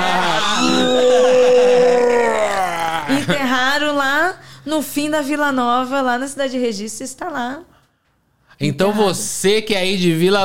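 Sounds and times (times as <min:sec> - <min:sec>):
voice imitating a doll's scream: 0:00.0 - 0:03.2
speech: 0:04.7 - 0:07.7, 0:08.6 - 0:10.4.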